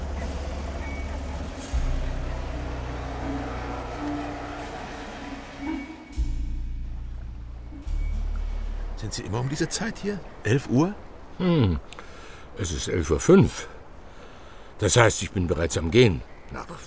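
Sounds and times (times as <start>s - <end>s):
Mercedes car engine rumbling driving onto works grounds: 0.0s - 12.0s
speech: 9.0s - 12.0s, 12.6s - 13.7s, 14.8s - 16.8s.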